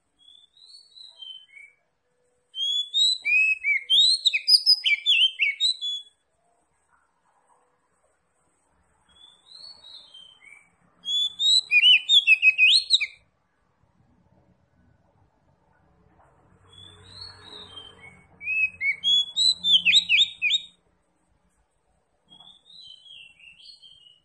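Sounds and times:
Oriental magpie-robin singing vigorously with rapid varied whistles and chirps: 0.2 - 1.8, 2.5 - 6.2, 9.1 - 13.2, 16.7 - 20.8, 22.3 - 24.2.

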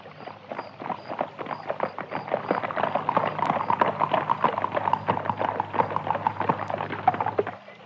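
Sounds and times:
horse hooves clip-clopping at a fast gallop: 0.0 - 7.8
horse-drawn carriage rumbling: 2.6 - 7.6.

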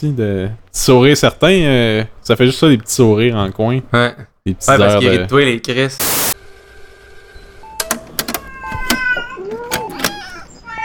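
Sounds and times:
speech: 0.0 - 6.2
sharp clicks and knocks: 7.8 - 9.0
cat meowing inside a hospital: 8.4 - 10.8.

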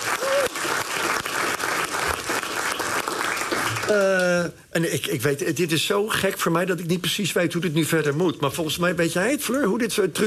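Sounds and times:
audience applause at a live radio broadcast event: 0.0 - 4.4
speech: 3.9 - 10.2.

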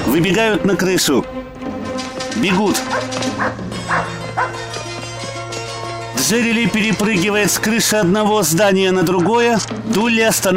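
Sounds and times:
speech: 0.1 - 1.4, 2.4 - 4.1, 6.2 - 10.5
dog barking from a rooftop: 2.9 - 4.7, 9.1 - 9.4.

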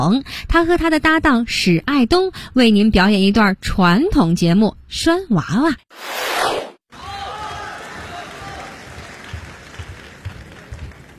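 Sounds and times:
speech: 0.0 - 7.1
audience clapping at a live crosstalk comedy show in Beijing: 7.0 - 11.1.

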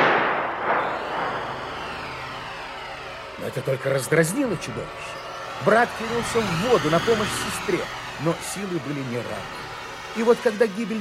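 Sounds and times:
gunshot fired at an alligator near water: 0.0 - 2.6
speech: 3.4 - 11.0.

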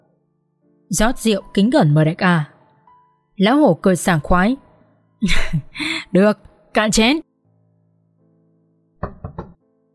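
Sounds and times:
speech: 0.9 - 2.5, 3.4 - 4.6, 5.2 - 7.3
knocking on a door: 9.0 - 9.6.

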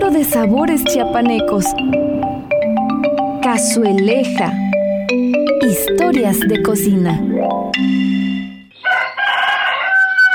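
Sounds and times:
speech: 0.1 - 2.4, 3.5 - 8.2
rooster crowing in the morning: 8.7 - 10.3.

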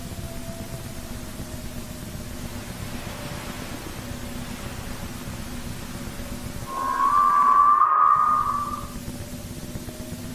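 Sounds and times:
low hiss: 0.0 - 10.3
whale song moaning: 6.6 - 9.2.

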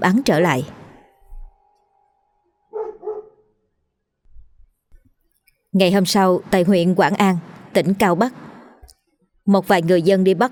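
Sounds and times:
speech: 0.0 - 0.8, 5.7 - 8.5, 9.5 - 10.4
pack of dogs barking loudly: 2.7 - 3.4.

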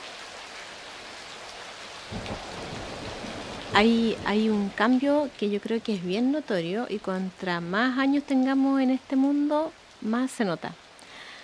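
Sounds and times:
steady winter rain: 0.0 - 11.4
deep rumbling swell: 2.2 - 6.0
speech: 3.7 - 10.8.

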